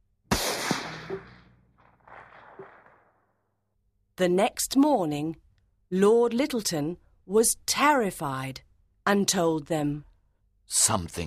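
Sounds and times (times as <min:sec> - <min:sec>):
gunshot fired at night with tail: 0:00.3 - 0:03.3
speech: 0:04.2 - 0:10.1, 0:10.7 - 0:11.2.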